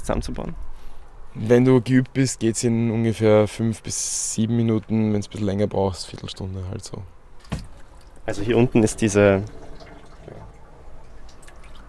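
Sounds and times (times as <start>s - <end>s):
speech: 0.1s - 0.7s, 1.3s - 7.6s, 8.3s - 9.6s
water drips: 7.4s - 8.4s, 9.1s - 11.8s
water running from a small pump-fed hand-washing tap into a basin: 8.4s - 11.8s.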